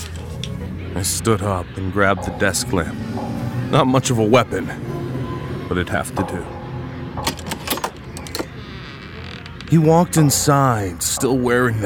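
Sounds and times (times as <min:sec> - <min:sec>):
speech: 0:01.0 - 0:04.9, 0:05.7 - 0:06.6, 0:09.7 - 0:11.8
doorknob turning with metallic clicks and rattles: 0:07.2 - 0:09.5.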